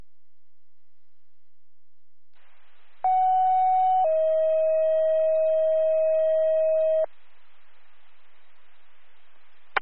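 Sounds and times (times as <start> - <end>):
faint radio hiss: 2.4 - 9.8
fire dispatch radio cancel alert tones: 3.0 - 7.1.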